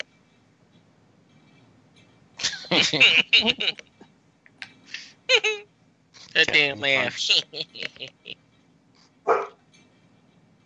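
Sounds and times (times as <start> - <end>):
laughter: 2.4 - 3.8, 7.2 - 8.4
speech: 2.7 - 3.9, 6.5 - 8.4
dog barking: 9.3 - 9.6.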